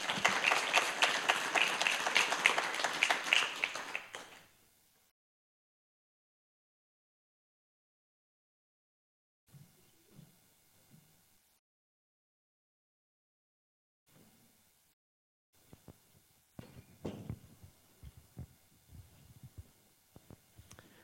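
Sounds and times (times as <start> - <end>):
audience applause: 0.0 - 4.5.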